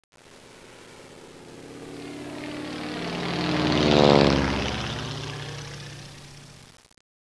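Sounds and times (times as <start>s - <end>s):
propeller plane: 0.3s - 6.7s.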